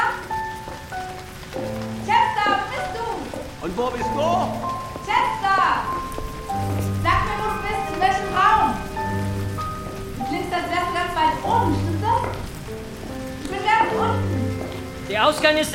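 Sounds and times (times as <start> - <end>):
steady rain falling: 0.0 - 15.7
voices calling out and speaking loudly: 2.0 - 6.0, 7.0 - 9.2, 10.2 - 12.6, 13.5 - 14.5
speech: 3.6 - 4.7, 15.1 - 15.7.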